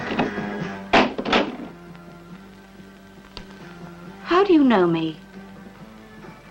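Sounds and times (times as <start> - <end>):
door shutting with two heavy thuds: 0.1 - 1.8
speech: 4.6 - 5.2.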